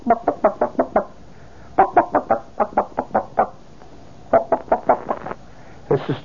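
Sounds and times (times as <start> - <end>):
human voice imitating chicken clucking while pecking gravel: 0.0 - 1.2, 1.8 - 3.6, 4.3 - 5.4.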